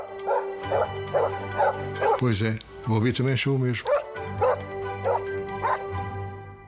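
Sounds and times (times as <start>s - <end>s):
dog barking: 0.0s - 2.2s, 3.9s - 5.9s
speech: 0.7s - 4.1s.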